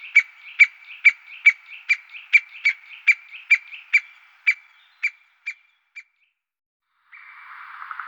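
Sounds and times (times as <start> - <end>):
white-backed woodpecker sharp clicky call notes: 0.0 - 6.2.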